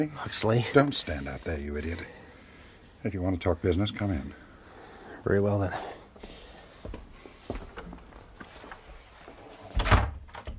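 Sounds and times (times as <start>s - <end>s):
speech: 0.0s - 2.2s, 3.0s - 4.4s, 5.2s - 7.0s
soft knocks and shuffles: 6.2s - 9.8s
library door opening and shutting: 9.6s - 10.5s
firmer door thud: 9.8s - 10.5s.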